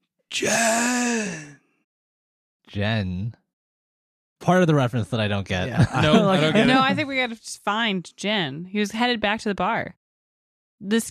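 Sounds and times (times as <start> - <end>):
human voice imitating a dying creature's last gasp during a role-playing game: 0.3 - 1.6
speech: 0.4 - 1.5, 2.8 - 3.4, 4.4 - 10.0, 10.8 - 11.0
laughter: 5.7 - 7.1.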